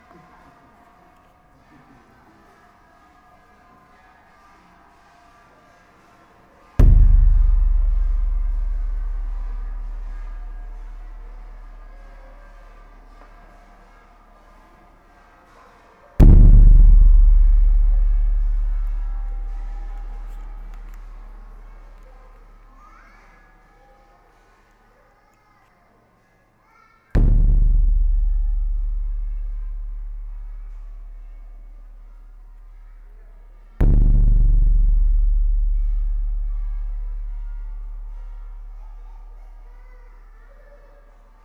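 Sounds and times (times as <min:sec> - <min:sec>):
war drum single hits: 0:06.8 - 0:13.2, 0:16.2 - 0:21.9, 0:27.2 - 0:32.3, 0:33.8 - 0:39.4.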